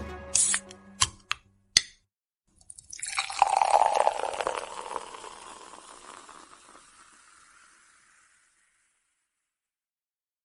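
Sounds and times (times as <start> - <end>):
drink pouring over ice, gurgling and fizzing: 2.5 - 9.4
ice clinking: 2.6 - 9.1.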